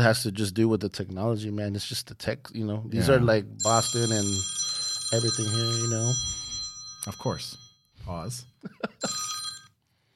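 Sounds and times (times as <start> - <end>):
speech: 0.0 - 6.4, 7.0 - 9.2
phone ringing with an electronic trill: 3.6 - 7.9, 8.9 - 9.8.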